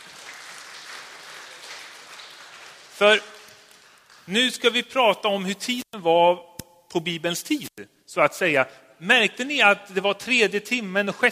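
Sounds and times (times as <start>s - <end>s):
audience applause: 0.0s - 4.3s
speech: 3.0s - 3.3s, 4.3s - 11.2s.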